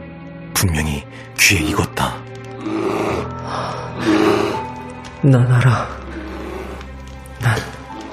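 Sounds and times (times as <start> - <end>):
speech: 0.6 - 4.4, 5.2 - 6.0
slow low heavy breaths with rumbling undertone: 2.6 - 5.0, 5.9 - 8.1.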